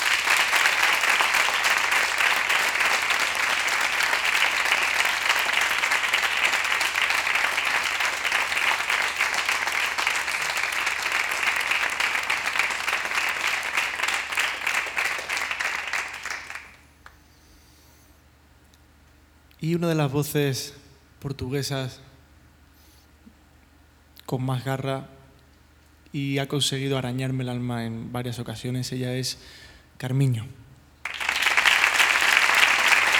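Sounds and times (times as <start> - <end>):
large audience applauding: 0.0 - 16.8, 31.0 - 33.1
speech: 19.7 - 22.1, 24.3 - 25.2, 26.1 - 30.6.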